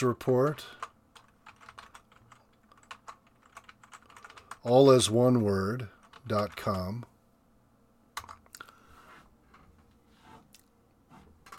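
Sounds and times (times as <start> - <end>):
speech: 0.0 - 0.9, 4.6 - 7.1
typing on a computer keyboard: 0.7 - 4.7, 6.0 - 6.8, 8.2 - 8.5.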